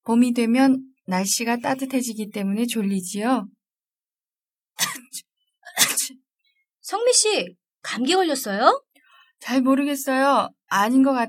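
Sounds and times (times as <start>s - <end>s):
speech: 0.0s - 3.6s, 6.9s - 11.2s
sneezes from a pollen allergy: 4.8s - 6.2s.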